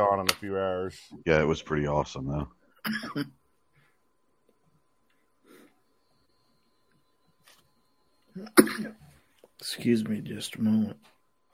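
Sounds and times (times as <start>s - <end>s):
speech: 0.0s - 3.4s, 8.4s - 9.0s, 9.6s - 11.1s
harsh cough: 2.8s - 3.4s, 8.4s - 9.1s
faint throat-clearing noises: 8.4s - 9.1s.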